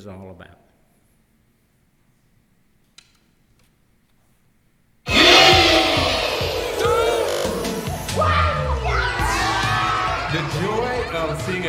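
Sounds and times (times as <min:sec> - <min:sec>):
speech: 0:00.0 - 0:00.7, 0:11.1 - 0:11.6
crowd of children squealing and screaming excitedly: 0:05.1 - 0:10.4.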